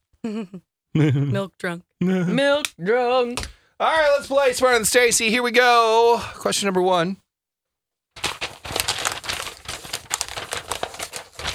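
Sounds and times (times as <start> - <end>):
speech: 0.2 - 7.2
paper rustling and crinkling: 8.2 - 11.5.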